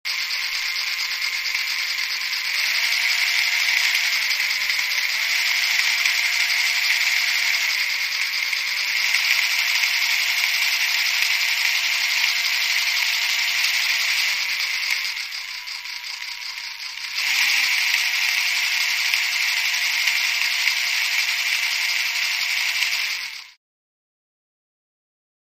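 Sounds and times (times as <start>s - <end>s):
DC motor revving with buzz: 0.1s - 23.6s.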